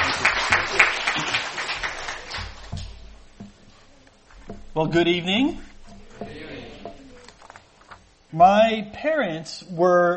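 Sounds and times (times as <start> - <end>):
audience applause for a guest speaker: 0.0 - 2.8
speech: 4.8 - 6.3, 8.3 - 10.1.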